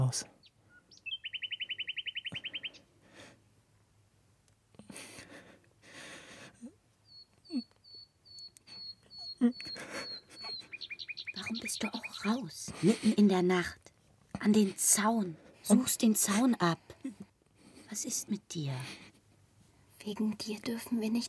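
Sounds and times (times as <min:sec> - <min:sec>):
speech: 0:00.1 - 0:00.3, 0:09.4 - 0:09.6, 0:11.8 - 0:13.8, 0:14.4 - 0:17.2, 0:17.9 - 0:19.0, 0:20.0 - 0:21.2
bird chirping: 0:00.3 - 0:02.9, 0:07.0 - 0:12.7.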